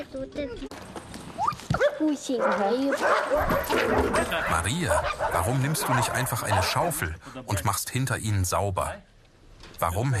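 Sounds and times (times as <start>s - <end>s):
speech: 0.0s - 1.2s, 1.8s - 9.1s, 9.8s - 10.1s
dogs barking and yelping: 1.4s - 6.9s.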